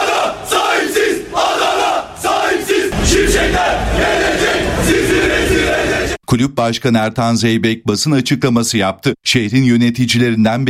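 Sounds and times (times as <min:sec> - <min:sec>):
football fans chanting and shouting outside city hall: 0:00.0 - 0:06.2
speech: 0:06.3 - 0:10.6.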